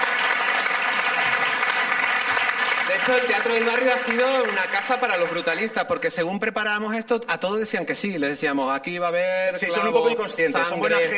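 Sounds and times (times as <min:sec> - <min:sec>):
audience applause in a theatre: 0:00.0 - 0:06.2
speech: 0:03.0 - 0:11.1.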